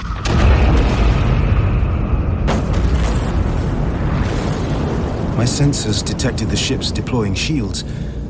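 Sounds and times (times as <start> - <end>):
massive thermonuclear explosions: 0.0 - 6.8
speech: 5.4 - 8.1.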